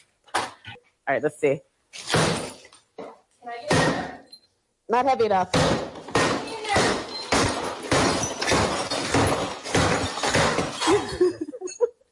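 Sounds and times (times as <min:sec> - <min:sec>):
speech: 0:01.1 - 0:02.0, 0:04.9 - 0:05.8
baseball bat smashing an object: 0:02.0 - 0:02.6, 0:05.6 - 0:10.9
laughter: 0:10.8 - 0:11.9.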